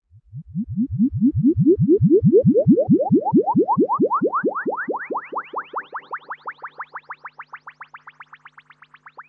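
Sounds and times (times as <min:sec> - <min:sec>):
cheesy synth wobble rising: 0:00.2 - 0:06.3.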